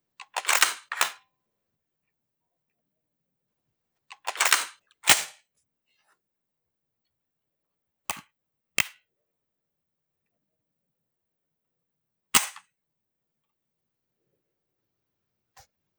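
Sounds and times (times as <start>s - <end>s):
SKS rifle action opening and closing: 0.3s - 1.2s, 4.1s - 5.3s.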